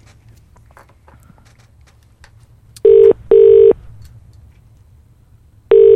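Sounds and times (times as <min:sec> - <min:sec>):
telephone ringing tone heard down the line: 0:02.9 - 0:03.8, 0:05.7 - 0:05.9.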